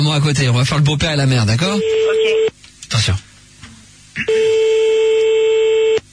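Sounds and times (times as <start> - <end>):
speech: 0.1 - 3.2
steady electronic phone tone while calling someone back: 1.7 - 2.5, 4.2 - 6.1.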